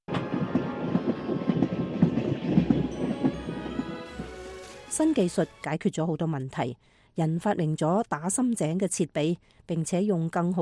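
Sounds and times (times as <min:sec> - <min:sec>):
train carrying lumber, firewood and coal clattering over rail joints: 0:00.1 - 0:05.4
speech: 0:05.0 - 0:10.6.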